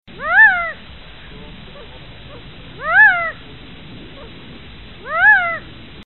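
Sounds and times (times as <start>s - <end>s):
quail calling: 0.2s - 0.8s, 1.7s - 3.4s, 5.0s - 5.7s.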